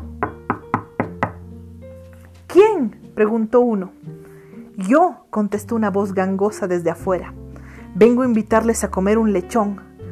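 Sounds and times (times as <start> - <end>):
knocking on a door: 0.2 - 1.4
speech: 2.5 - 4.0, 4.8 - 7.4, 8.0 - 9.9.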